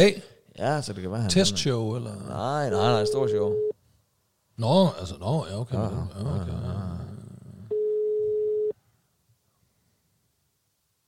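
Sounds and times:
speech: 0.0 - 3.7, 4.6 - 7.0
low noise: 0.0 - 11.0
outgoing phone call ringing tone beep: 2.8 - 3.7, 7.7 - 8.8.

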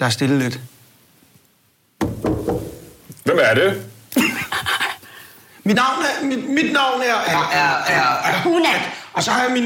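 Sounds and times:
speech: 0.0 - 0.8, 3.3 - 3.9, 5.6 - 9.6
loud hollow knocks on a door: 2.0 - 2.9.

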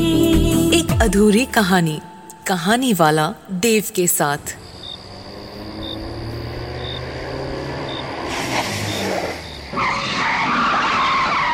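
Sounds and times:
speech: 1.0 - 4.6
car engine droning: 4.6 - 11.5
tires screeching as a car brakes hard: 4.6 - 11.5.

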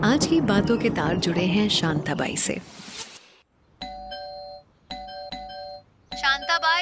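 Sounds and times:
speech: 0.2 - 3.0
electronic doorbell chiming two-tone ding-dong: 3.9 - 6.7.

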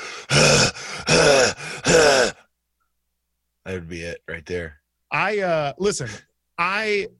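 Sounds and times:
man breathy inhales: 0.0 - 1.9
man groaning grunts imitating push-ups: 0.3 - 2.4
speech: 3.9 - 7.1.

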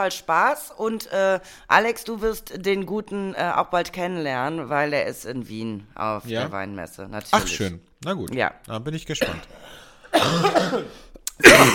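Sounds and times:
speech: 0.0 - 11.7
person coughing: 9.2 - 11.7.

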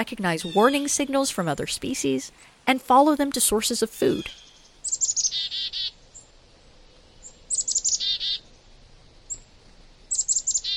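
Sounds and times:
songbirds calling in a mixed winter flock: 0.0 - 1.3, 3.4 - 10.7
speech: 0.0 - 4.5.

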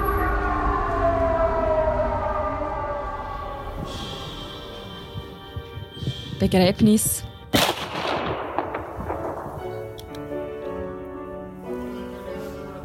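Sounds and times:
siren wailing: 0.0 - 8.2
low rumble: 0.0 - 11.0
speech: 6.4 - 7.3.

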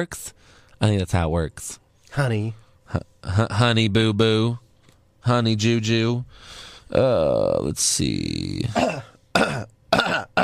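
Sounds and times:
speech: 0.0 - 4.6, 5.2 - 10.4
person clearing throat on a live microphone: 8.7 - 10.4.

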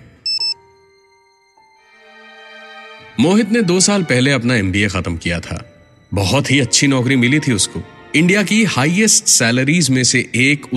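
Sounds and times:
phone new email notification electronic beeps: 0.2 - 0.7
speech: 3.2 - 10.7.

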